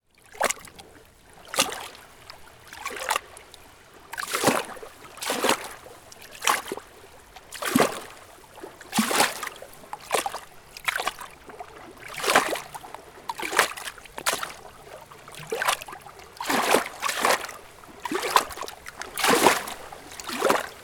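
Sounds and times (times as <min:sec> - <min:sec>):
lake waves lapping gently against rocks: 0:00.2 - 0:20.8.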